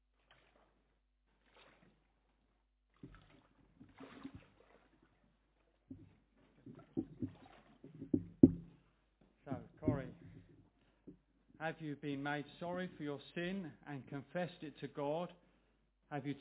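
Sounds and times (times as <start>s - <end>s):
water sloshing and splashing as people wade into a pool: 0.0s - 11.6s
speech: 11.6s - 15.4s, 16.1s - 16.3s.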